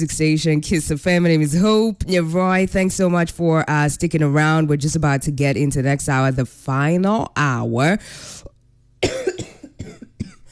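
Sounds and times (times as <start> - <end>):
speech: 0.0 - 9.4
person with the flu coughing: 9.0 - 10.5.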